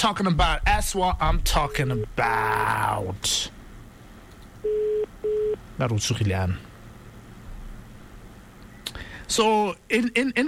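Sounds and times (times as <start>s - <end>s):
speech: 0.0s - 3.6s, 5.8s - 6.7s, 9.3s - 10.4s
outgoing phone call ringback tone: 4.6s - 5.6s.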